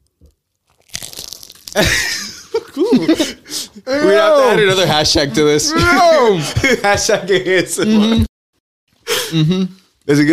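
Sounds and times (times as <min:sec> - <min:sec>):
potato chip bitten in ASMR-style crunching: 0:00.5 - 0:02.2
speech: 0:01.8 - 0:02.2, 0:03.9 - 0:08.3, 0:09.3 - 0:10.3
laughter: 0:01.8 - 0:08.3.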